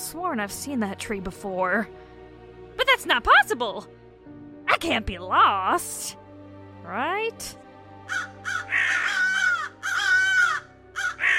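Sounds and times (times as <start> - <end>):
speech: 0.1 - 2.1, 3.0 - 6.2, 6.9 - 8.3
flock of crows cawing: 8.0 - 11.3.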